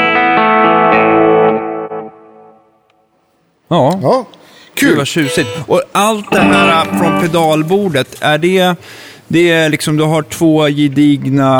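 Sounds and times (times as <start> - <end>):
electric guitar strumming chords through an Alnico amp speaker: 0.0 - 2.7, 4.9 - 5.7, 6.3 - 7.5
speech: 3.7 - 11.5.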